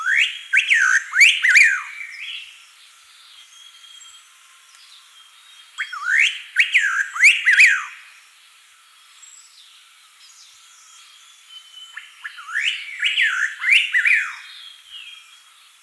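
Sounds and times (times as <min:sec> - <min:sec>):
striated laughingthrush whistled song: 0:00.0 - 0:02.4, 0:05.8 - 0:08.0, 0:11.6 - 0:15.2.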